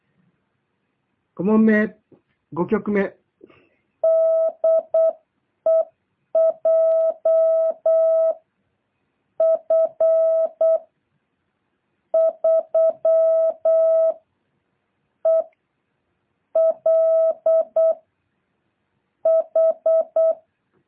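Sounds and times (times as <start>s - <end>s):
speech: 1.4s - 3.2s
Morse code beeping tone spelling a callsign: 4.0s - 8.4s, 9.4s - 10.8s, 12.2s - 14.2s, 15.3s - 15.5s, 16.6s - 18.0s, 19.3s - 20.4s.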